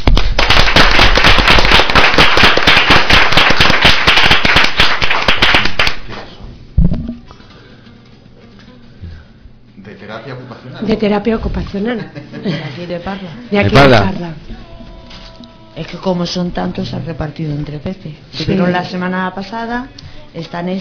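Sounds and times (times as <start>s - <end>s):
audience applauding to welcome visiting guests: 0.0s - 6.0s
speech: 10.8s - 14.5s, 15.9s - 20.8s.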